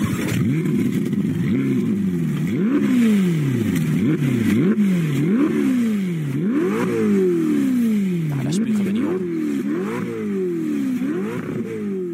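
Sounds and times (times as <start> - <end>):
Ferrari twin-turbo 3.9-litre V8 engine revving after a cold start: 0.0 - 12.1.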